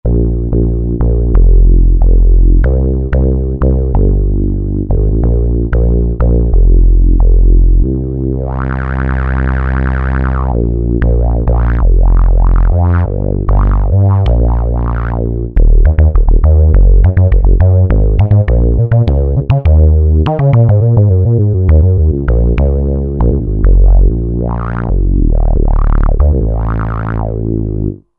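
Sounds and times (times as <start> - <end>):
Roland JV-2080 synthesizer with Super JX Bs: 0.0 - 28.0.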